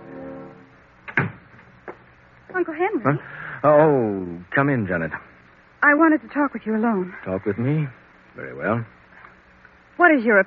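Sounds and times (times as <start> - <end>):
low hum: 0.0 - 10.0
door swinging shut: 1.1 - 1.4
speech: 2.6 - 9.0, 10.0 - 10.4.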